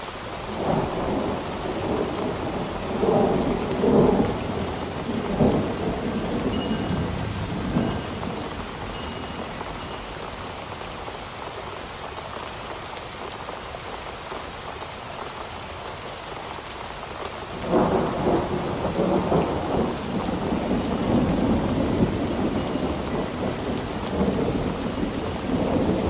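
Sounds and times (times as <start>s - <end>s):
storm rain hissing: 0.0s - 26.0s
low rolling thunder in a storm: 0.5s - 10.0s, 17.6s - 26.0s.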